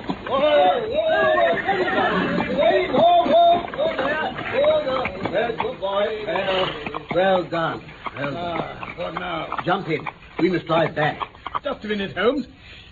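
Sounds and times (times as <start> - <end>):
laughter: 0.0 - 12.2
busy continuous commotion: 0.0 - 12.9
excited voices: 0.0 - 12.9
horse pulling an empty driverless trap whinnying: 0.1 - 5.2
speech: 6.5 - 12.9.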